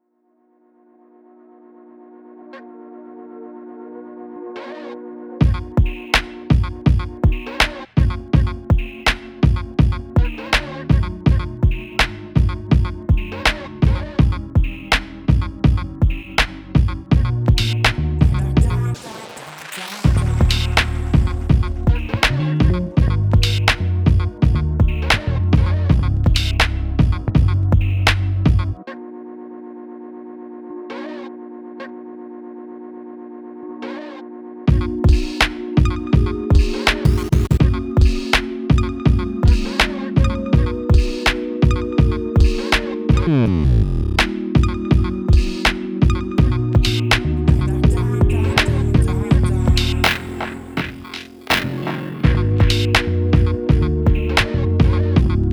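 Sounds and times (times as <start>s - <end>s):
drums: 5.4s - 28.8s, 34.7s - 55.5s.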